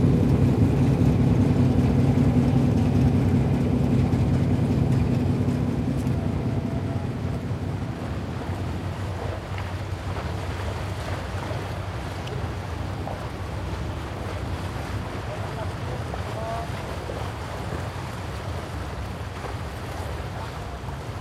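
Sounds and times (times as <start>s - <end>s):
loaded cargo barge diesel engine droning: 0.0s - 21.1s
water noise: 0.0s - 21.1s
wind: 0.0s - 21.1s.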